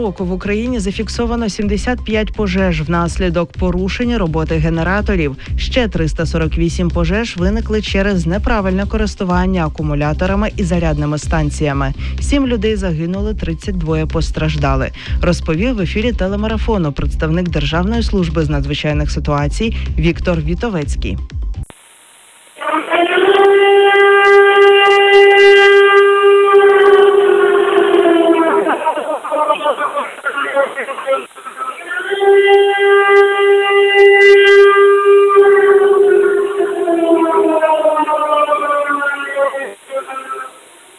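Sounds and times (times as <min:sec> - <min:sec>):
speech: 0:00.0 - 0:21.6
faint hiss: 0:21.7 - 0:23.3, 0:28.3 - 0:32.2, 0:38.2 - 0:40.9
loud air raid warning siren wailing: 0:22.6 - 0:29.9, 0:31.8 - 0:40.9.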